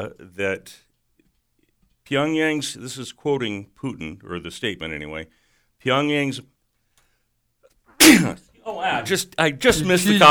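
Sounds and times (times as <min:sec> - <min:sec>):
speech: 0:00.0 - 0:00.9, 0:02.1 - 0:06.5, 0:08.1 - 0:10.2
person sneezing: 0:08.0 - 0:08.5.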